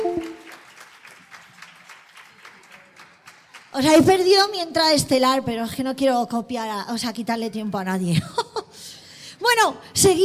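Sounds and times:
audience applause at a presentation of performing-arts stage workers: 0:00.0 - 0:03.8
speech: 0:03.8 - 0:08.5, 0:09.5 - 0:10.2.

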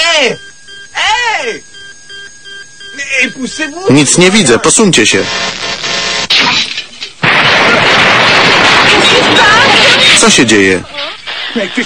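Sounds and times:
speech: 0:00.2 - 0:00.5, 0:01.2 - 0:01.7, 0:03.1 - 0:06.6, 0:10.2 - 0:11.0, 0:11.6 - 0:11.8
vehicle exploding: 0:06.3 - 0:10.3.

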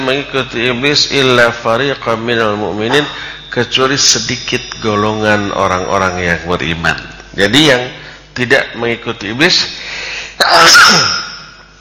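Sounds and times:
speech: 0:00.1 - 0:11.2
loud sneeze: 0:10.5 - 0:11.3.

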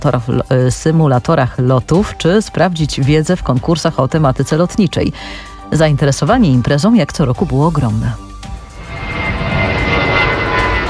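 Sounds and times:
speech: 0:00.0 - 0:08.3
airplane engine drone at an aviation show: 0:07.8 - 0:10.8.

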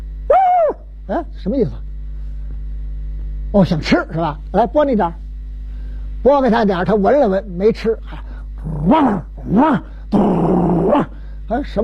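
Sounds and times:
speech: 0:01.1 - 0:01.9, 0:03.5 - 0:05.2, 0:06.2 - 0:11.8
man imitating a dog growling and snarling: 0:08.1 - 0:11.2.

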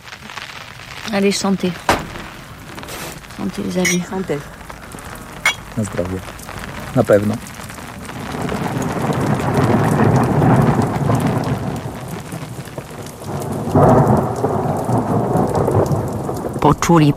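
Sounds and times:
thunder rumbling: 0:00.0 - 0:16.6
heavy rain downpour: 0:00.0 - 0:17.1
speech: 0:01.1 - 0:01.9, 0:03.4 - 0:04.6, 0:05.8 - 0:07.5, 0:16.8 - 0:17.1.

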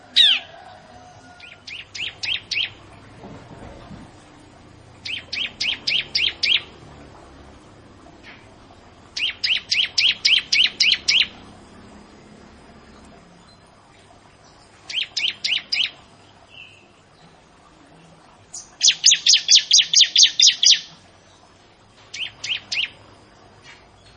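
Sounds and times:
bar-winged prinia chirping in quick high downslurred bursts: 0:01.4 - 0:03.1, 0:04.9 - 0:07.5, 0:08.2 - 0:13.8, 0:14.4 - 0:17.3, 0:18.5 - 0:21.4, 0:22.1 - 0:23.0.

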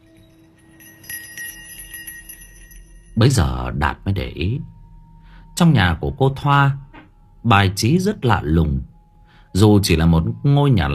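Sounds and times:
small hanging bell jingling in a light breeze off a river: 0:00.0 - 0:03.7
faint steady ringing tone: 0:00.0 - 0:10.9
speech: 0:03.2 - 0:04.8, 0:05.6 - 0:06.8, 0:07.4 - 0:08.9, 0:09.5 - 0:10.9.

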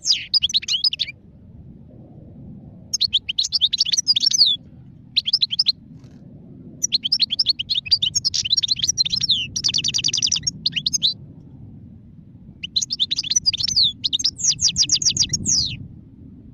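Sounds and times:
wild European goldfinch singing tinkling twittering phrases: 0:00.0 - 0:01.1, 0:02.9 - 0:04.6, 0:05.2 - 0:05.8, 0:06.8 - 0:11.2, 0:12.6 - 0:15.8
steady low rumble of background noise: 0:00.0 - 0:16.5.

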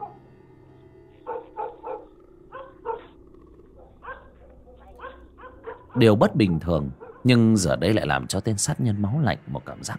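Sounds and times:
low hum: 0:00.0 - 0:09.9
pack of dogs barking loudly in a village: 0:01.2 - 0:07.5
speech: 0:06.0 - 0:09.9.

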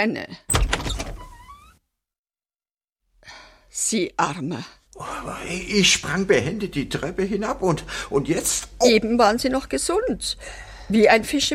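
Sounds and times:
speech: 0:00.0 - 0:00.6, 0:03.8 - 0:11.5
door creaking open: 0:00.5 - 0:01.8.

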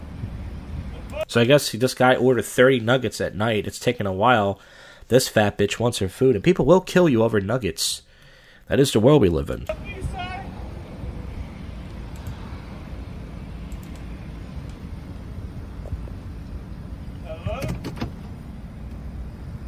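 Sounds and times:
speech: 0:01.2 - 0:08.1, 0:08.7 - 0:10.0
car interior rumble: 0:09.7 - 0:19.6
clicks and clunks: 0:17.6 - 0:19.0.

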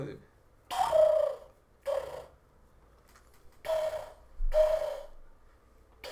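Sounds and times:
person imitating pigeon cooing: 0:00.7 - 0:02.4, 0:03.6 - 0:05.2.

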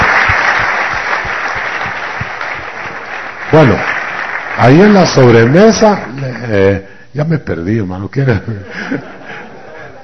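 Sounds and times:
church gathering audience applauding after a meal: 0:00.0 - 0:06.2
speech: 0:03.5 - 0:04.0, 0:04.6 - 0:09.2
laughter: 0:08.3 - 0:10.0.

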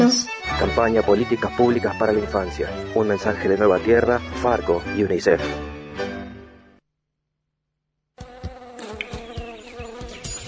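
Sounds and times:
speech: 0:00.1 - 0:05.7
mosquito buzzing: 0:08.2 - 0:10.4.

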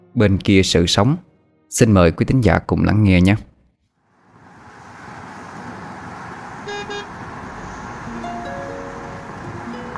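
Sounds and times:
speech: 0:00.2 - 0:03.5
busy street traffic roar of passing vehicles: 0:03.9 - 0:09.9
car horn toots: 0:06.6 - 0:07.2.

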